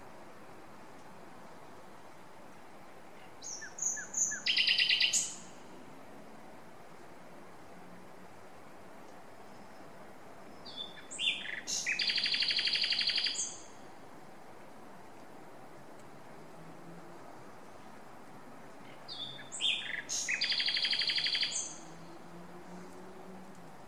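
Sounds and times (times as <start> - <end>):
Common nightingale song: 3.0 - 5.7, 9.3 - 13.9, 18.8 - 22.4.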